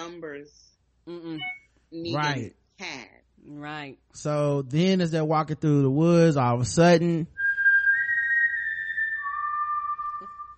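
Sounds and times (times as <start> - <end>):
speech: 0.1 - 7.4
person whistling imitating a signal whistle: 7.4 - 10.5.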